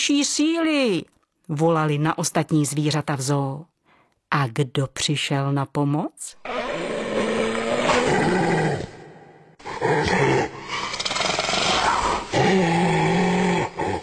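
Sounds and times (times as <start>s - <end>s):
speech: 0.0s - 3.7s, 4.3s - 6.6s
hyena call roaring and growling: 6.4s - 14.0s.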